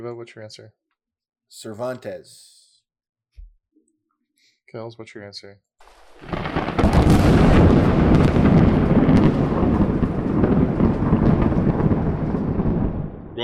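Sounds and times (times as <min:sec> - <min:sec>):
speech: 0:00.0 - 0:00.9, 0:01.5 - 0:02.6, 0:04.7 - 0:06.3
rain-like hiss: 0:05.8 - 0:07.2
rolling thunder with a sharp crack: 0:05.8 - 0:13.4.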